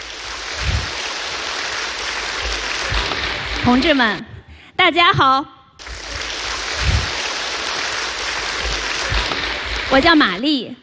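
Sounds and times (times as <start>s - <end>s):
large audience applauding a speaker: 0.0s - 4.2s, 5.8s - 10.6s
speech: 3.7s - 5.6s, 9.9s - 10.8s.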